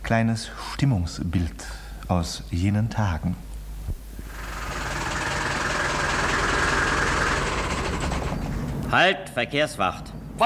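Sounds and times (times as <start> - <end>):
speech: 0.1 - 3.5, 8.9 - 10.4
lorry engine idling on a street: 4.2 - 8.9.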